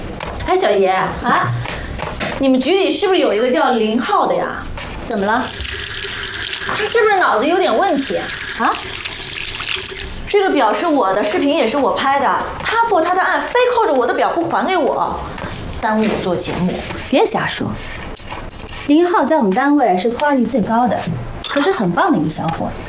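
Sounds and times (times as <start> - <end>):
people talking: 0.5 - 1.8, 2.4 - 5.6, 6.7 - 8.8, 10.3 - 17.8, 18.9 - 22.8
tap water running as hands are washed before a meal: 5.2 - 10.3.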